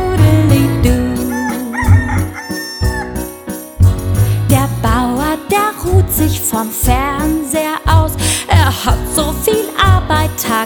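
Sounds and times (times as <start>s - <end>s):
steady musical backing with thumping bass beats: 0.0s - 10.6s
rooster on a dung heap crowing: 1.3s - 3.1s.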